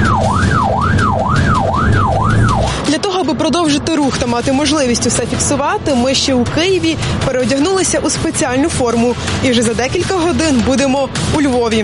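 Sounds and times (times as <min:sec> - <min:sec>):
ambulance siren wailing as the ambulance sets off: 0:00.0 - 0:03.9
low rumble of the moving ambulance: 0:00.0 - 0:11.8
speech: 0:03.8 - 0:11.8.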